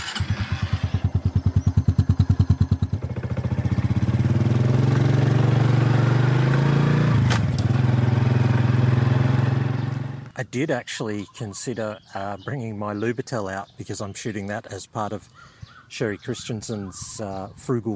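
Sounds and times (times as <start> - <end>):
Honda 125 agricultural motorcycle engine running: 0.0 - 10.3
speech: 10.5 - 17.9.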